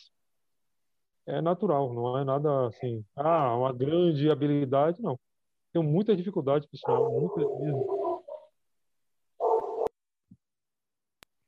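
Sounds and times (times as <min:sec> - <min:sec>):
speech: 0:01.3 - 0:08.0
dog barking: 0:06.8 - 0:08.5, 0:09.4 - 0:09.9.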